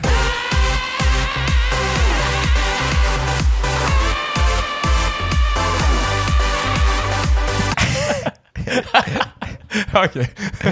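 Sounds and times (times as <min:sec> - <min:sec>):
bright layered synths: 0:00.0 - 0:07.8
steady pulsing kick beat of an electronic pop track: 0:00.0 - 0:07.8
sung vocal line in an electronic pop track: 0:00.0 - 0:07.8
laughter: 0:07.8 - 0:10.7
speech: 0:10.0 - 0:10.7.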